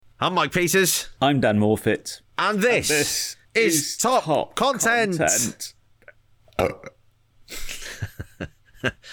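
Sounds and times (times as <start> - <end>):
speech: 0.2 - 5.8, 6.6 - 7.7, 8.4 - 9.1
person burping: 6.0 - 7.0.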